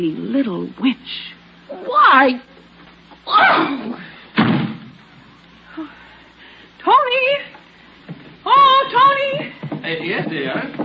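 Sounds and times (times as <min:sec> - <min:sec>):
speech: 0:00.0 - 0:02.5, 0:03.3 - 0:04.0, 0:05.8 - 0:06.0, 0:06.8 - 0:07.6, 0:08.4 - 0:10.8
door slamming shut with a heavy thud: 0:04.4 - 0:04.9.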